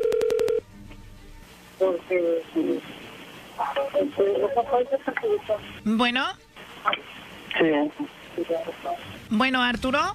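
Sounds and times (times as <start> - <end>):
telephone keypad tones as a number is dialed: 0.0 - 0.6
voices talking on the telephone line: 1.8 - 9.9
speech: 2.1 - 3.0, 3.6 - 10.1.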